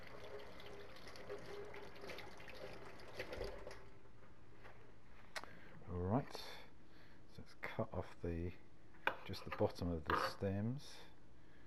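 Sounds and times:
tap water running over mushrooms being rinsed: 0:00.0 - 0:04.0
speech: 0:07.8 - 0:08.7, 0:09.3 - 0:11.1.

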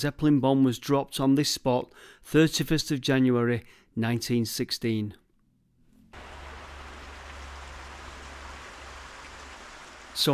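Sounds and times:
speech: 0:00.0 - 0:05.2, 0:10.2 - 0:10.3
pumped mine water gushing into a canal: 0:06.2 - 0:10.3.

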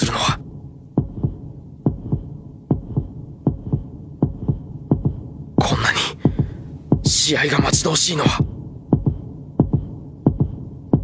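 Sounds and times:
loud heartbeat: 0:00.4 - 0:11.0
faint hum: 0:05.6 - 0:07.7
speech: 0:07.3 - 0:08.5.

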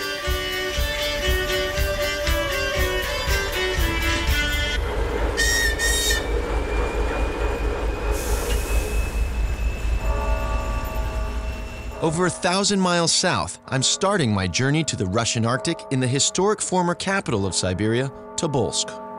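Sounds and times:
train rumbling along the rails to the Bovanenkovo gas field in the Russian Arctic: 0:00.0 - 0:13.0
high metallic squealing and ringing tones from train wheels: 0:03.0 - 0:12.1
speech: 0:12.0 - 0:19.0.

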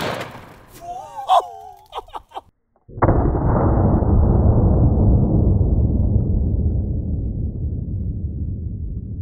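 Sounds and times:
gunshot into a ballistics gel block: 0:00.0 - 0:00.6, 0:02.9 - 0:06.0
laughter: 0:00.8 - 0:02.5
rumble: 0:02.9 - 0:09.1.

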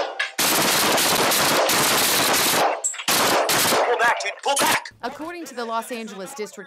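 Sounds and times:
gunfire from police officers' firearms in Los Angeles: 0:00.4 - 0:04.8
speech: 0:04.1 - 0:06.6.

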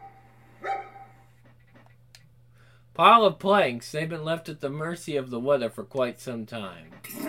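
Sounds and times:
low steady hum: 0:00.0 - 0:07.2
hound barking: 0:00.6 - 0:01.2
speech: 0:03.0 - 0:07.2.

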